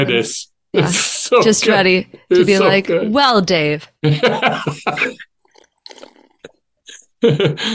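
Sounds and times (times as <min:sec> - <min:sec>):
speech: 0:00.0 - 0:05.3, 0:07.2 - 0:07.7
slurping sips from a cup: 0:05.4 - 0:06.7.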